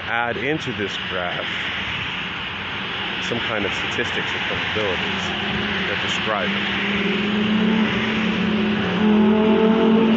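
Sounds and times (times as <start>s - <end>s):
high-revving sports car engines roaring past: 0.0s - 10.1s
speech: 0.1s - 2.0s, 3.2s - 8.0s.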